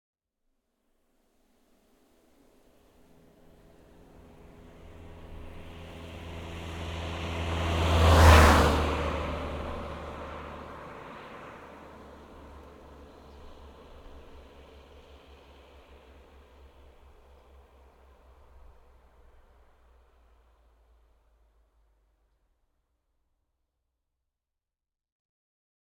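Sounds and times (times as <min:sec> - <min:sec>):
Audi A3 8L 1.9 TDI passing by at medium speed: 0:04.0 - 0:16.4.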